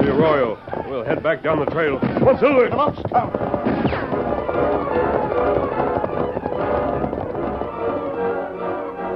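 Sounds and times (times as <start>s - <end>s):
speech: 0.2s - 4.0s
gunshots fired at two riders fleeing along a desert trail: 2.0s - 7.9s.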